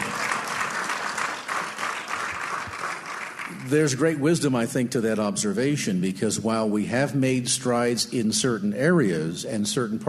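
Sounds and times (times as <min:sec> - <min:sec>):
audience applause: 0:00.0 - 0:04.2
speech: 0:03.6 - 0:10.0.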